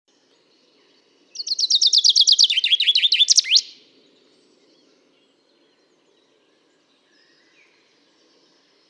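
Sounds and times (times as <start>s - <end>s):
Common chaffinch Fringilla coelebs song: 0.1s - 8.8s.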